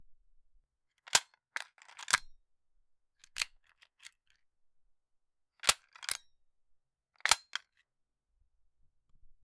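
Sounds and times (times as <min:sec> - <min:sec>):
pistol magazine ejecting: 0:05.6 - 0:06.2, 0:07.3 - 0:07.6.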